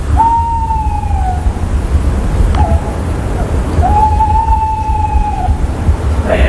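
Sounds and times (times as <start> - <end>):
tawny owl giving long steady whistled notes: 0.0 - 1.8, 2.5 - 5.8
constant low rumbling background: 0.0 - 6.4.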